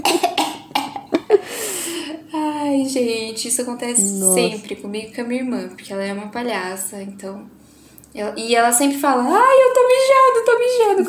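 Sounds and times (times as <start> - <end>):
short harsh coughs: 0.0 - 1.4
long breathy exhale: 1.4 - 2.2
speech: 2.8 - 11.0.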